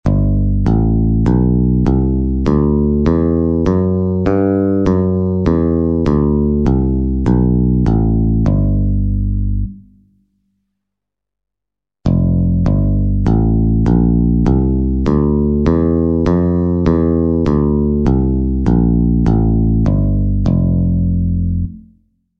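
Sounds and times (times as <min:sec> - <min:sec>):
bass guitar playing C major and F major scales in first position: 0:00.0 - 0:10.0, 0:12.0 - 0:22.0.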